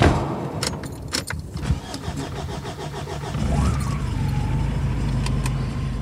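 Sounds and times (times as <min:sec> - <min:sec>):
pickup truck engine starting, revving and pulling away: 0:00.2 - 0:06.0
keys jangling: 0:00.6 - 0:01.6.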